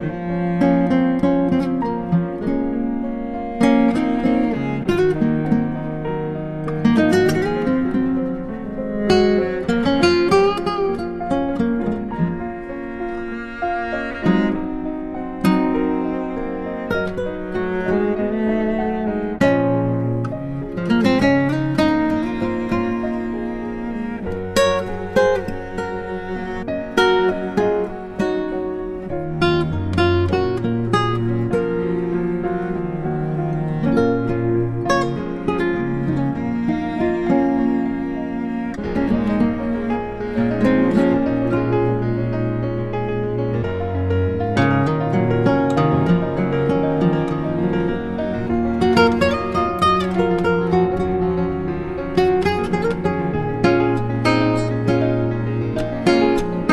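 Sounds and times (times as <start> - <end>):
piano music: 0.0 - 56.7.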